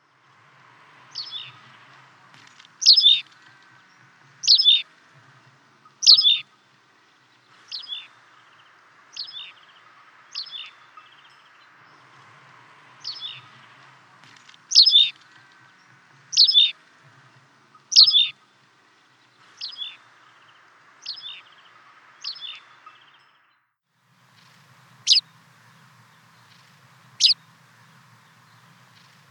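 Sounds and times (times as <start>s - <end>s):
wood warbler calling: 2.8s - 3.2s, 4.4s - 4.8s, 6.0s - 6.4s, 14.7s - 15.2s, 16.4s - 16.7s, 17.9s - 18.3s, 24.3s - 29.3s.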